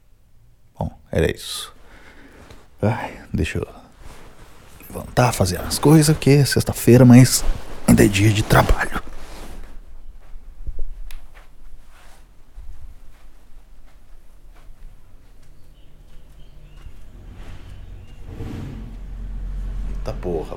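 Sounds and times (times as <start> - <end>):
speech: 0.8 - 1.8, 2.8 - 3.8, 4.9 - 9.0
faint bird chirps: 15.4 - 18.3
truck engine rumbling outside: 17.1 - 20.5.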